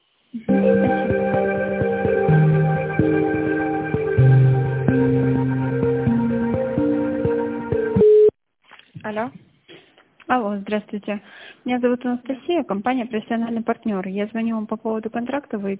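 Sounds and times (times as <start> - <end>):
synthesized on-hold music over a telephone line during a call transfer: 0.4 - 8.3
speech: 10.7 - 15.7.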